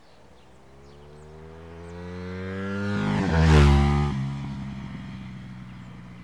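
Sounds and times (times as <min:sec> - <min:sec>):
motorcycle engine idling and revving: 0:00.4 - 0:06.2.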